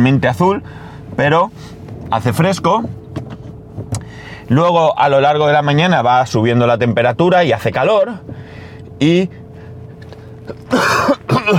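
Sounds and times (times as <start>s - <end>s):
speech: 0.0s - 3.0s, 4.5s - 9.4s, 10.5s - 11.5s
harsh chesty cough with deep rattling: 10.5s - 11.5s.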